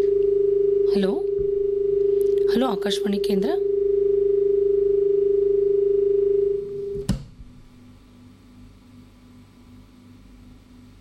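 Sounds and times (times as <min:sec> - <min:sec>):
telephone tone after a phone-in call was cut off: 0:00.0 - 0:07.0
speech: 0:00.9 - 0:01.3, 0:02.6 - 0:03.6
brief thump: 0:06.9 - 0:07.5.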